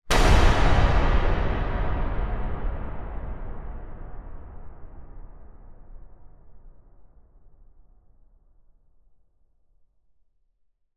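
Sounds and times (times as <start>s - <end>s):
large metal impact hit for horror cinema sound design: 0.1s - 6.6s.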